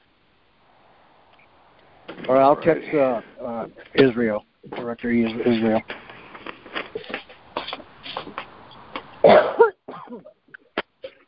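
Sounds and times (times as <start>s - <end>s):
speech: 2.1s - 6.0s
soft rustling: 3.2s - 9.2s
person coughing: 9.2s - 10.4s.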